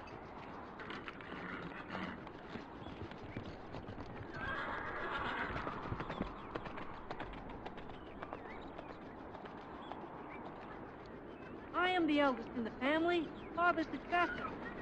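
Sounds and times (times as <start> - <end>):
horse hooves clip-clopping: 0.0 - 14.8
horse whinnying: 4.3 - 6.0
speech: 12.0 - 14.6.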